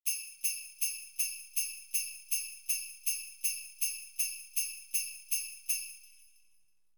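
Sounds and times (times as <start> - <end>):
tambourine: 0.0 - 6.6.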